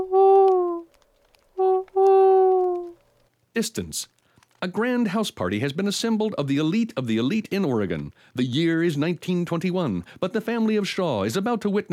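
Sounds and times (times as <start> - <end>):
owl hooting: 0.0 - 1.0, 1.6 - 3.0
speech: 3.6 - 11.9.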